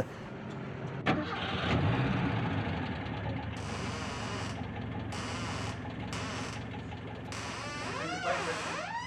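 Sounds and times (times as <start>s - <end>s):
vintage car engine starting and running at a car show in wet weather: 0.0s - 8.3s
vintage car engine revving: 1.1s - 7.4s.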